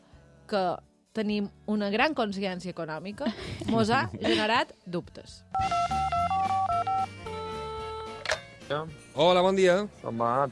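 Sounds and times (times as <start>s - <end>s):
speech: 0.5s - 6.0s, 8.7s - 10.5s
telephone keypad tones: 5.6s - 8.2s.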